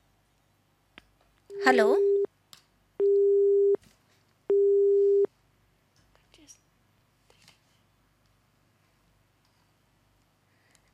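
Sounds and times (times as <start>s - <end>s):
faint noise: 0.0s - 10.9s
speech: 1.6s - 2.1s
telephone busy tone after a call disconnects: 3.0s - 3.8s, 4.5s - 5.3s.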